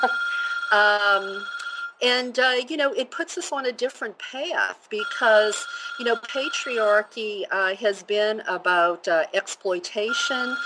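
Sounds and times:
telephone ringing: 0:00.0 - 0:02.1, 0:05.0 - 0:07.1, 0:10.1 - 0:10.6
speech: 0:00.0 - 0:10.6.

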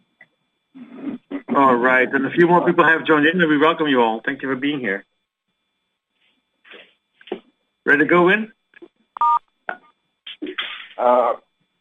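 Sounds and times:
speech: 0:01.6 - 0:05.1, 0:07.9 - 0:08.6, 0:11.0 - 0:11.4
telephone keypad tones: 0:09.2 - 0:09.4.

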